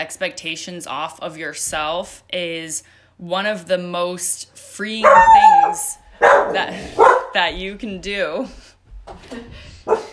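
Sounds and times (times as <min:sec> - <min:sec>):
speech: 0:00.0 - 0:10.0
dog barking: 0:05.0 - 0:07.4, 0:09.9 - 0:10.1.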